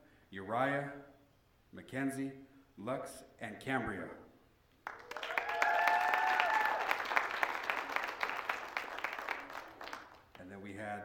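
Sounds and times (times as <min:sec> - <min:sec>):
speech: 0:00.3 - 0:01.1, 0:01.7 - 0:04.2
room full of people applauding: 0:04.8 - 0:10.3
people cheering and whooping: 0:04.9 - 0:10.0.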